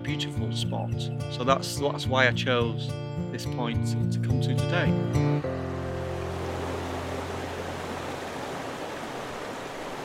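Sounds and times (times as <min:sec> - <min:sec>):
speech: 0:00.1 - 0:05.6
rushing water where two rivers meet: 0:05.5 - 0:10.0.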